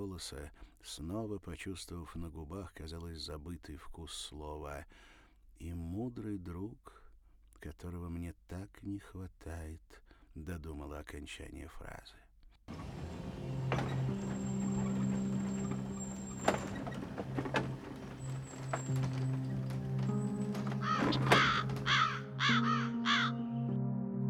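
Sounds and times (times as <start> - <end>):
speech: 0.1 - 7.0, 7.6 - 12.9
scattered knocks: 12.7 - 22.2
crow cawing harsh from a dry tree branch: 20.8 - 23.4.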